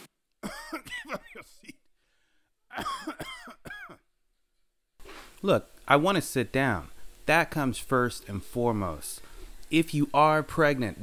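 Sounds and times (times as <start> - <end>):
man coughing and clearing throat deliberately: 0.4 - 1.9, 2.7 - 4.0
speech: 0.7 - 1.8, 5.4 - 11.0.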